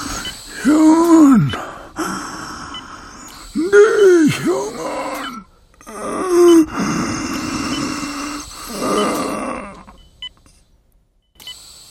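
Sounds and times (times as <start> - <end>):
dying man groaning: 0.0 - 2.5, 3.5 - 10.0
dying man's labored ragged breathing: 0.0 - 10.0
speech: 0.6 - 1.6.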